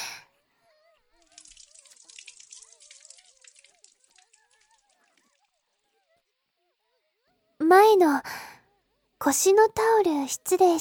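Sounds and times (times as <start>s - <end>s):
hot bath water pouring over a person's back: 1.2s - 5.6s
speech: 7.8s - 8.4s, 9.2s - 10.7s.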